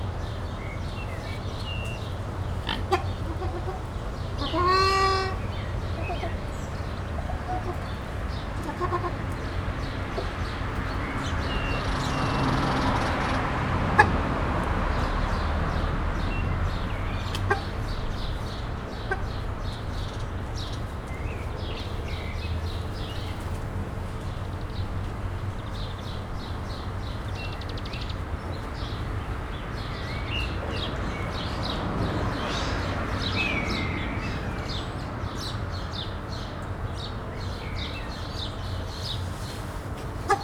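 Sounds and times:
road traffic: 0.0s - 40.4s
ruddy shelduck: 2.8s - 6.4s.

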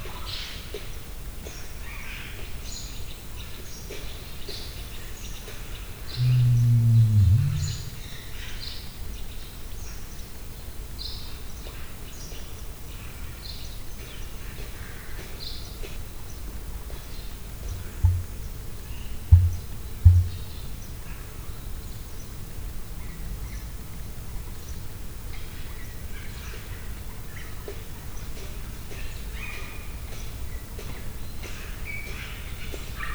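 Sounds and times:
rhea at a zoo: 6.2s - 8.1s
male emu at a zoo: 6.2s - 8.2s, 17.7s - 18.6s, 19.3s - 20.5s.

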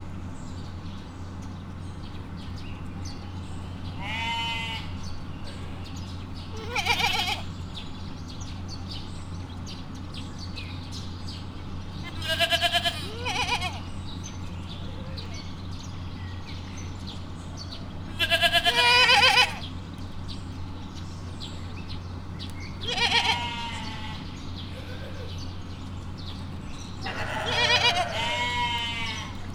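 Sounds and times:
goat kid bleating at Miskolc zoo: 4.0s - 5.0s, 6.5s - 7.5s, 12.0s - 14.0s, 18.0s - 19.8s, 22.8s - 25.4s, 27.0s - 29.5s.

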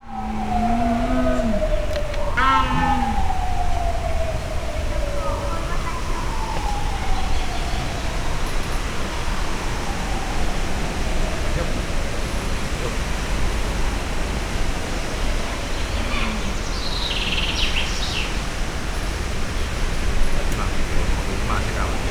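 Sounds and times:
leopard or jaguar: 0.0s - 7.6s, 15.3s - 17.2s
windy weather: 0.0s - 22.0s.

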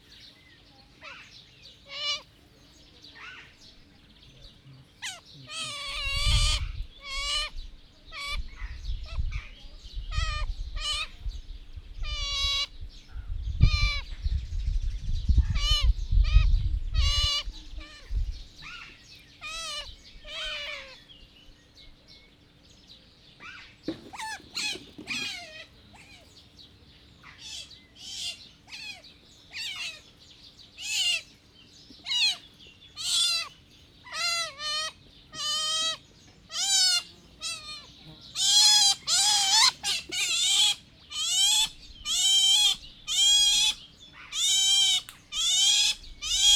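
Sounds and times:
wind: 0.0s - 46.5s
Asian small-clawed otter waiting for feeding: 23.9s - 25.6s.

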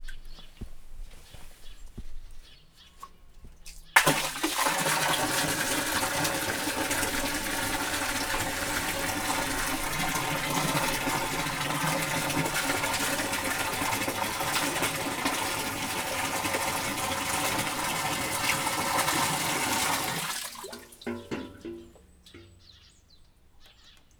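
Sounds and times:
water poured from a bucket back into a well in Varboc: 3.0s - 22.0s.

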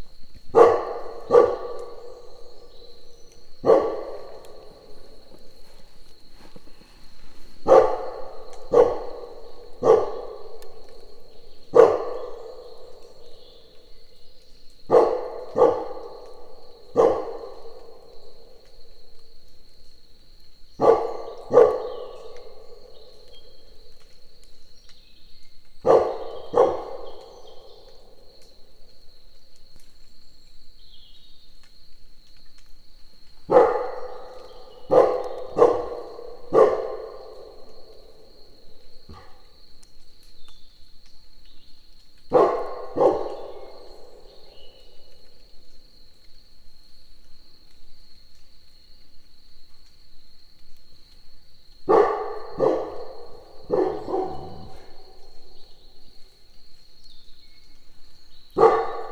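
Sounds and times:
crickets chirping: 0.0s - 59.1s
dog: 0.5s - 13.0s, 14.8s - 19.0s, 20.8s - 24.2s, 25.8s - 28.8s, 33.5s - 39.6s, 42.3s - 45.6s, 51.9s - 56.6s, 58.5s - 59.1s.

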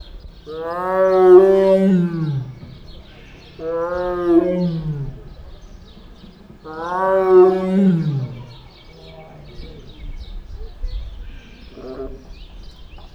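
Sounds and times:
white tiger howling at Nyíregyháza zoo: 0.5s - 10.0s.

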